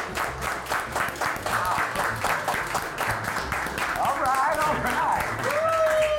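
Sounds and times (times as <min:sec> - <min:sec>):
crowd clapping in a steady slow rhythm: 0:00.0 - 0:06.1
crowd cheering: 0:04.4 - 0:06.1.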